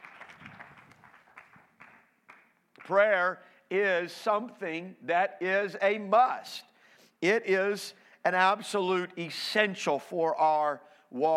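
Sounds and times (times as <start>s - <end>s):
audience clapping hands in a steady rhythm at an evening prayer gathering: 0.0s - 3.3s
speech: 2.9s - 11.3s.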